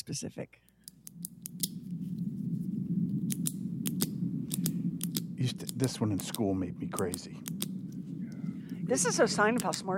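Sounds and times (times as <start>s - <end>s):
speech: 0.1s - 1.3s, 5.4s - 7.7s, 8.9s - 9.9s
steady low hum: 0.4s - 9.9s
old pen clicking repeatedly: 3.3s - 6.4s, 7.0s - 7.7s, 9.6s - 9.8s.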